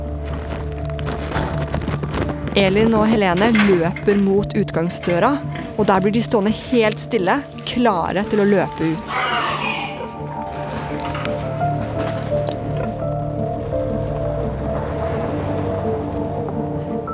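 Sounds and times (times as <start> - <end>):
car engine rumbling as the car turns and drives away: 0.0 - 17.1
car tires crunching: 0.0 - 17.1
speech: 2.6 - 9.2.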